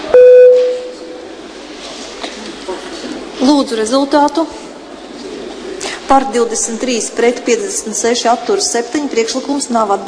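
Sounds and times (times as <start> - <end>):
low noise: 0.0 - 10.0
electronic voting system beep in a parliament chamber: 0.1 - 0.9
speech: 3.4 - 4.6, 6.1 - 10.0.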